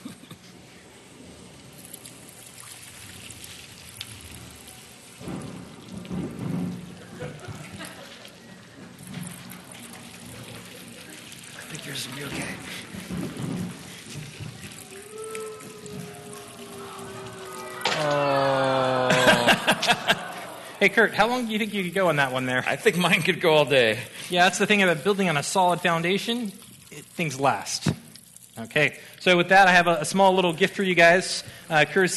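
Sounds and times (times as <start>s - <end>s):
rain pattering: 0.0s - 32.1s
low thunder rumbles: 5.2s - 7.8s, 12.3s - 14.9s
laughter: 7.0s - 8.7s, 15.6s - 21.1s
speech: 12.0s - 13.8s, 20.8s - 26.6s, 27.2s - 27.8s, 28.6s - 32.1s.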